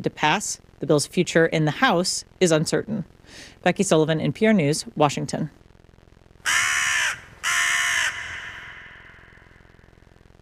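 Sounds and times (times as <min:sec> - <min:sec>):
speech: 0:00.0 - 0:05.6
crow giving loud harsh caws: 0:06.4 - 0:10.0.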